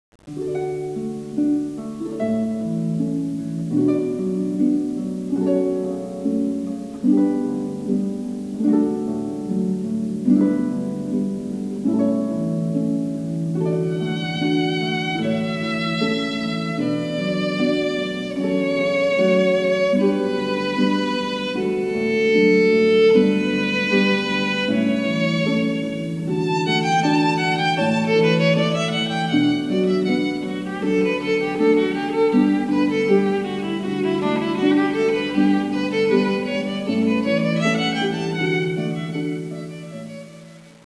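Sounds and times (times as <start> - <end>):
harp: 0.2 - 40.8
violin: 0.3 - 40.8.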